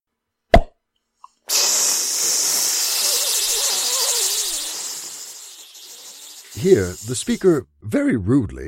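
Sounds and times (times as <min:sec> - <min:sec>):
man's mouth imitation of champagne cork pop with thumb out of cheek: 0:00.5 - 0:01.9
man's tongue against teeth imitating champagne fizz: 0:01.4 - 0:07.6
speech: 0:06.6 - 0:08.6.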